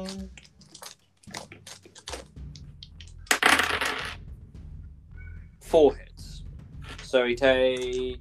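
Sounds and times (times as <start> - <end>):
speech: 0.0 - 0.5, 5.7 - 6.1, 7.1 - 8.1
dice clattering onto a hard table: 3.3 - 4.2.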